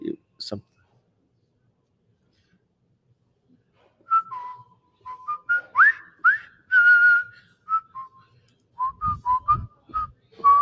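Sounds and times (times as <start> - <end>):
whistled march melody from a war film: 4.1 - 8.2, 8.8 - 10.6.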